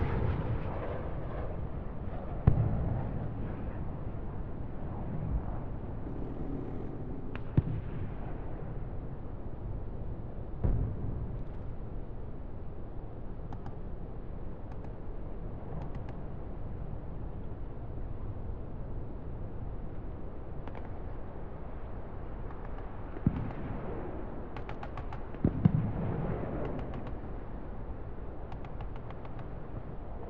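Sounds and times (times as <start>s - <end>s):
indoor half-open training ground ambience: 0.0s - 30.2s.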